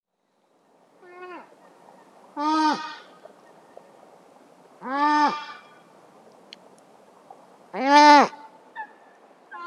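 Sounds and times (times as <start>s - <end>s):
coypu contact calls in a wetland: 1.0s - 1.5s, 2.4s - 3.2s, 4.8s - 5.8s, 7.7s - 9.6s.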